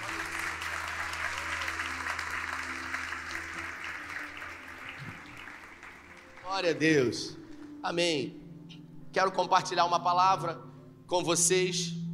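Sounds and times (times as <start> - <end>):
church audience applauding: 0.0 - 7.1
speech: 6.5 - 8.4, 9.2 - 12.0.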